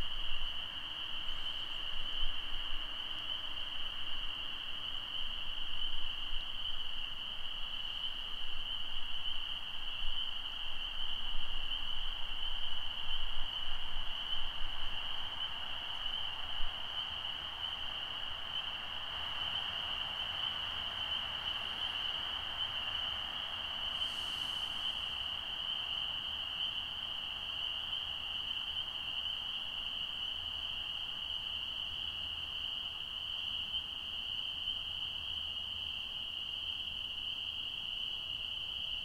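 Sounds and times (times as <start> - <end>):
frog chorus trilling: 0.0 - 39.0.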